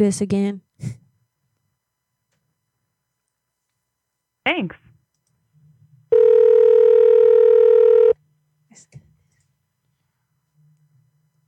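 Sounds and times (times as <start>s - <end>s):
speech: 0.0s - 1.0s, 4.5s - 4.8s
call-screening service electronic tone on a phone line: 6.1s - 8.2s.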